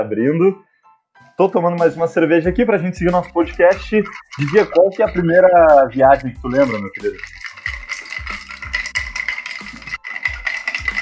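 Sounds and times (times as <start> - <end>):
speech: 0.0 - 0.7, 1.4 - 7.4
ice rattling and clattering: 2.7 - 11.0.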